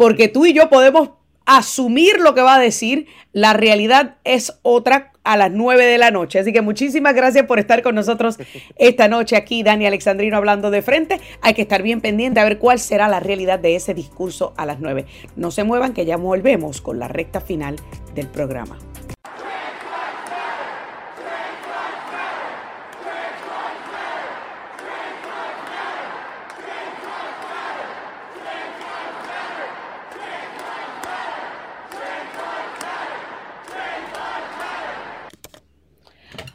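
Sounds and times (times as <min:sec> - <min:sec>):
speech: 0:00.0 - 0:19.1
protesters shouting and chanting inside a state capitol: 0:19.2 - 0:35.4.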